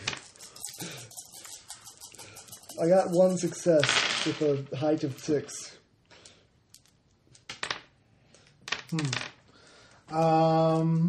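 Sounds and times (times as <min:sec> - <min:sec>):
dice rattling across a tabletop: 0:00.0 - 0:05.3, 0:06.7 - 0:09.5
speech: 0:02.8 - 0:05.8, 0:08.9 - 0:09.3, 0:10.1 - 0:11.0.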